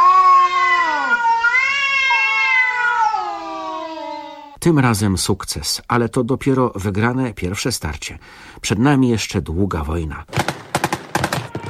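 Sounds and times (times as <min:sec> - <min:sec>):
cats yowling in drawn-out wavering caterwauls: 0:00.0 - 0:04.6
speech: 0:04.7 - 0:10.4.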